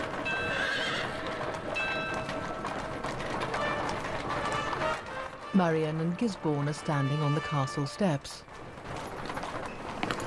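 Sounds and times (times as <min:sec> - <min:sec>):
covered horse-drawn carriage wheels rumbling: 0:00.0 - 0:10.2
horse hooves clip-clopping on a street: 0:00.0 - 0:10.2
horse neighing: 0:00.4 - 0:01.2
speech: 0:05.5 - 0:08.5.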